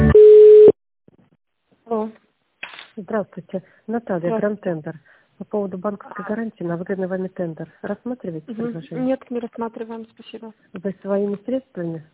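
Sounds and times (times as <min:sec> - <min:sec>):
electronic telephone on-hold tones during a call transfer: 0:00.2 - 0:00.8
single steady telephone beep: 0:00.2 - 0:00.8
speech: 0:03.4 - 0:12.1.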